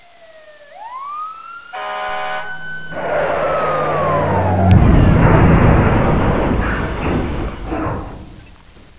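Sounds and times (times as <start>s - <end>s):
crash: 2.3s - 8.9s.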